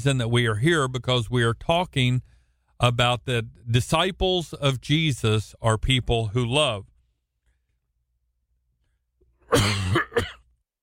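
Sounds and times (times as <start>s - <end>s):
speech: 0.0s - 6.9s, 9.5s - 10.4s
person coughing harshly: 9.4s - 10.5s.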